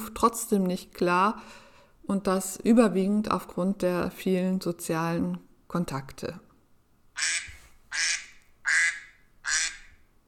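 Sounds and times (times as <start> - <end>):
speech: 0.1 - 6.5, 7.2 - 8.2
duck quacking loud and raspy: 7.2 - 10.0.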